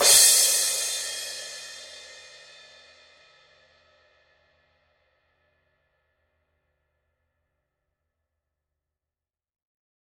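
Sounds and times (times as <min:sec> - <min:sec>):
16 inch thin crash cymbal edge hit: 0:00.0 - 0:02.8.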